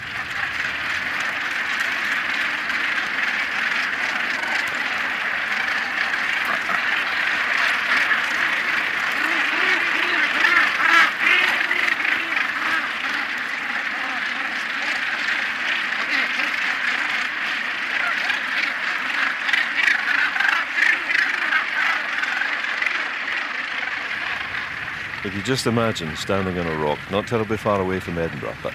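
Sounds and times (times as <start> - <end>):
northern gannet colony calling on a rock: 0.0 - 28.7
speech: 25.4 - 28.7.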